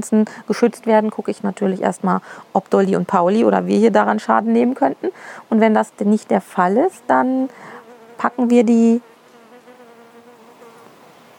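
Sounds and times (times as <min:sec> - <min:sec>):
speech: 0:00.0 - 0:09.1
bee buzzing: 0:06.7 - 0:11.3.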